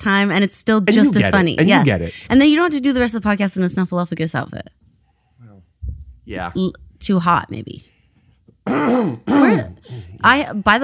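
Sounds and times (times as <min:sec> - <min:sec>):
speech: 0:00.0 - 0:04.8, 0:06.3 - 0:07.9, 0:08.7 - 0:10.8
throat clearing: 0:08.6 - 0:10.2.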